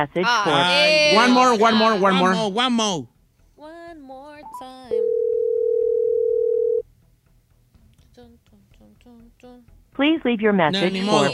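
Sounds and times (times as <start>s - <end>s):
speech: 0.0s - 4.6s, 9.4s - 11.3s
ringback tone of an outgoing telephone call: 4.9s - 6.8s.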